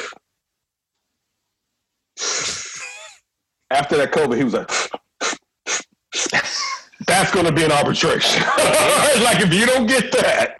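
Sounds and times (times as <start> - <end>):
voice imitating wheezy heavy breathing: 2.2 - 3.2, 4.6 - 6.4
speech: 3.7 - 5.0, 7.2 - 10.5
laughter: 8.2 - 10.3.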